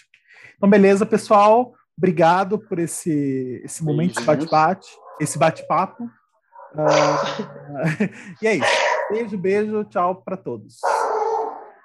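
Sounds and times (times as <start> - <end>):
speech: 0.0 - 11.0
people chatting: 0.6 - 6.1, 6.8 - 11.0
dog barking: 6.5 - 7.5, 8.6 - 9.4, 10.8 - 11.8
people laughing: 6.8 - 8.7.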